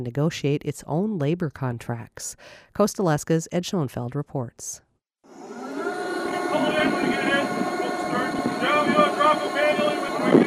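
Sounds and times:
speech: 0.0 - 4.8, 6.5 - 7.3
blustery wind across a ferry deck: 5.4 - 10.4
indistinct voices: 5.7 - 10.4.

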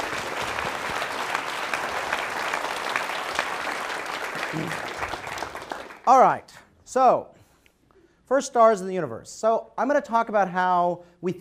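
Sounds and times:
audience applause: 0.0 - 6.1
speech: 4.5 - 4.9, 6.1 - 7.4, 8.3 - 11.3.

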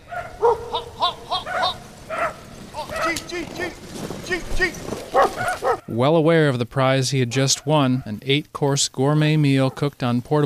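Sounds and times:
several local dogs barking and yipping excitedly: 0.0 - 5.9, 7.4 - 8.2, 9.6 - 9.9
speech: 5.9 - 10.4.

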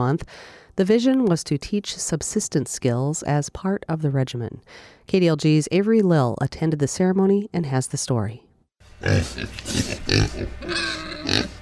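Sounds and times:
speech: 0.0 - 11.5
pigs grunting and squealing in a pen: 9.0 - 11.5.

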